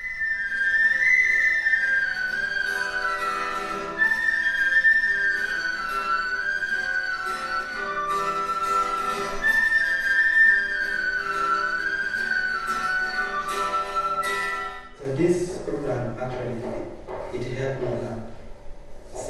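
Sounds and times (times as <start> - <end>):
penny whistle playing a flowing high-pitched melody: 0.0 - 15.0
speech: 16.1 - 18.2.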